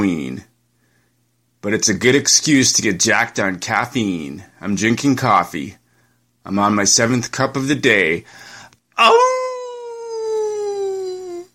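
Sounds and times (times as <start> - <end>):
speech: 0.0 - 0.5, 1.6 - 5.8, 6.4 - 9.4
person imitating a wolf howl: 9.0 - 11.5.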